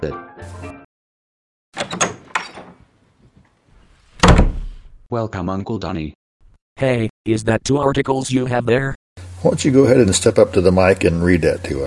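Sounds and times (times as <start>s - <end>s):
speech: 0.0s - 0.7s, 5.1s - 6.2s, 6.8s - 11.8s
door pulled open with a scraping rattling slide: 1.8s - 2.8s
door clattering as it settles: 1.8s - 2.9s, 4.2s - 4.8s.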